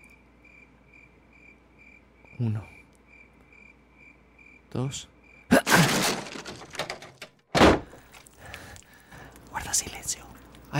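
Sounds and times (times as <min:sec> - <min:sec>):
speech: 0:02.4 - 0:02.8, 0:04.7 - 0:05.1, 0:09.7 - 0:10.7
creaking and rattling debris settling: 0:05.6 - 0:08.4
heavy door forced open with a splintering crash: 0:05.7 - 0:08.0.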